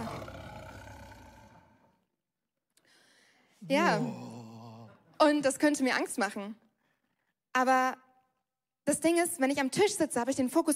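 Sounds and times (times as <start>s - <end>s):
lion roaring: 0.0s - 1.9s, 3.9s - 5.0s
speech: 3.6s - 4.2s, 5.2s - 6.6s, 7.6s - 8.0s, 8.8s - 10.7s.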